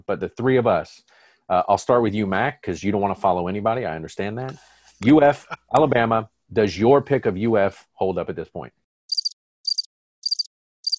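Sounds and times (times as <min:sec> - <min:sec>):
speech: 0:00.1 - 0:08.8
cricket chirping in high-pitched trilling bursts: 0:09.1 - 0:10.9.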